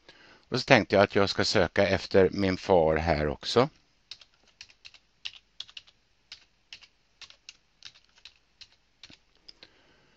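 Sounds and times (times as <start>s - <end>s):
speech: 0.5s - 3.8s
typing on a computer keyboard: 4.1s - 9.3s.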